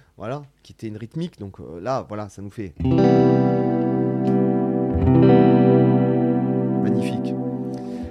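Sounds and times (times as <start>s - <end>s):
speech: 0.2s - 3.8s
electric guitar chords through a reverb pedal in an effects loop: 2.8s - 8.1s.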